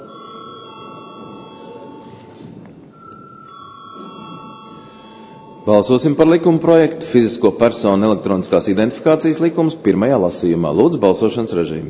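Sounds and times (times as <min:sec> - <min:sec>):
parliament chamber bell ringing before a vote: 0:00.0 - 0:06.5
speech: 0:05.7 - 0:11.8.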